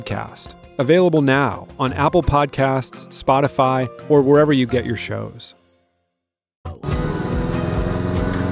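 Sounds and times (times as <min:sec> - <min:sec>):
speech: 0:00.0 - 0:05.6
lawn mower engine running: 0:06.8 - 0:08.4.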